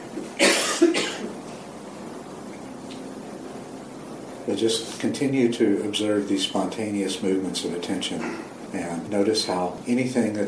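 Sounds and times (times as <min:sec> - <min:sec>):
person coughing: 0:00.4 - 0:01.3, 0:08.2 - 0:08.5
speech: 0:04.5 - 0:10.4.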